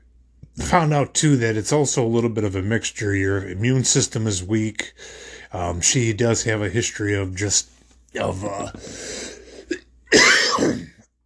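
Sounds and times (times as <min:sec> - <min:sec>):
speech: 0:00.7 - 0:09.2
throat clearing and coughing from a tickle in the throat: 0:09.6 - 0:11.0.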